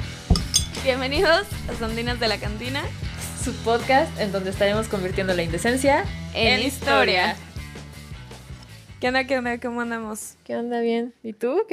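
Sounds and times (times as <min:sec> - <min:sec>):
glasses clinking together in a toast: 0:00.3 - 0:01.0
speech: 0:00.8 - 0:07.5, 0:09.0 - 0:11.7.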